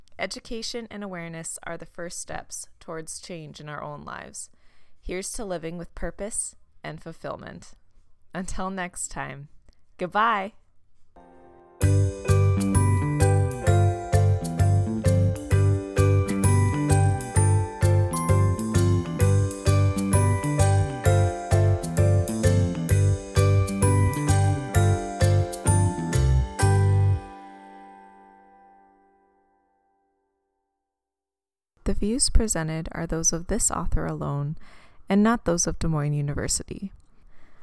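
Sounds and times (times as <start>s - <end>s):
speech: 0.2s - 10.6s, 11.8s - 12.1s, 32.0s - 37.0s
upbeat instrumental podcast outro theme tune with tinkling notes over a driving beat: 11.2s - 29.7s.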